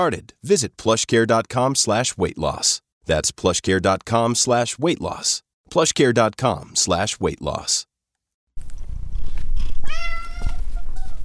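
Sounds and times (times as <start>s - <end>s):
speech: 0.0s - 7.9s
pet cat meowing: 9.8s - 11.2s.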